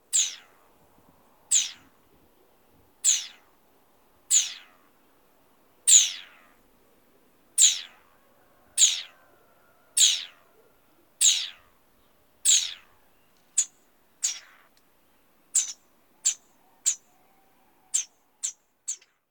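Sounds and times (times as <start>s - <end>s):
garden dormouse Eliomys quercinus: 0.0s - 19.2s.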